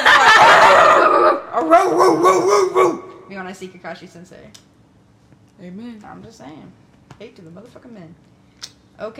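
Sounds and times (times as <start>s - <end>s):
laughter: 0.0s - 1.8s
person imitating yappy dog barks: 0.6s - 3.2s
speech: 2.1s - 4.8s, 5.6s - 8.3s, 9.0s - 9.1s.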